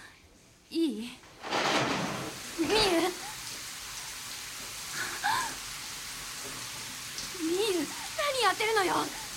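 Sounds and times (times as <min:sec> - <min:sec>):
speech: 0:00.7 - 0:01.2, 0:08.7 - 0:09.2
shower water running in a bathroom: 0:00.7 - 0:09.3.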